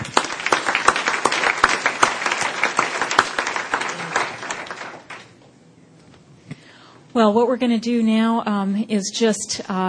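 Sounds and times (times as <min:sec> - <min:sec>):
conference session audience applauding: 0:00.0 - 0:05.4
speech: 0:07.2 - 0:09.8.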